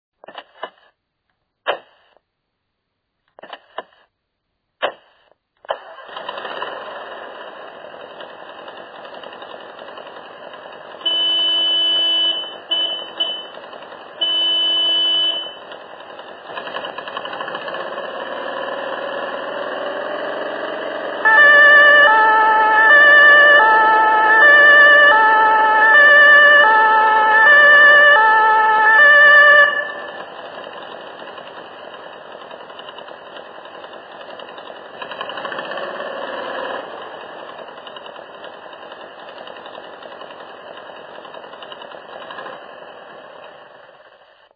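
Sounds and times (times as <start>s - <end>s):
emergency vehicle two-tone siren: 11.0s - 15.7s, 18.6s - 30.8s.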